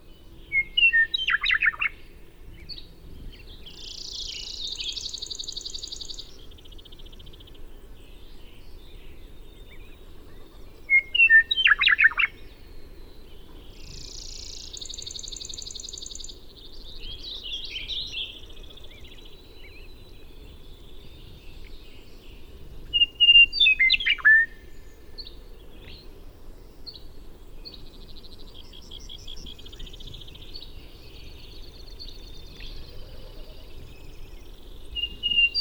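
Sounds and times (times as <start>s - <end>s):
western meadowlark singing in Montana: 0.0s - 35.5s.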